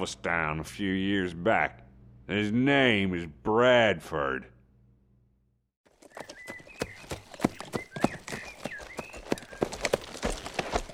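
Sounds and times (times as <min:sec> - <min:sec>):
speech: 0:00.0 - 0:04.5
birds chirping: 0:05.9 - 0:10.9
horses drawing wagons clip-clopping: 0:05.9 - 0:10.9.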